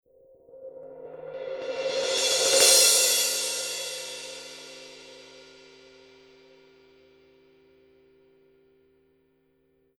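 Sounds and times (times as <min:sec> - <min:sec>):
Paiste 900 Series 18 heavy crash cymbal roll: 0:00.9 - 0:06.8.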